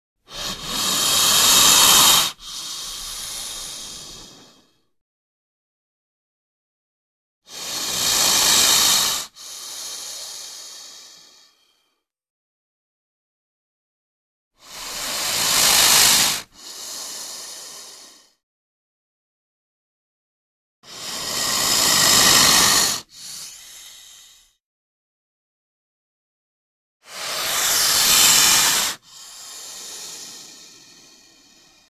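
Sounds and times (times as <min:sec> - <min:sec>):
snake warning hiss before attacking: 0:00.3 - 0:04.8, 0:07.5 - 0:11.9, 0:14.6 - 0:18.4, 0:20.9 - 0:24.6, 0:27.0 - 0:31.9.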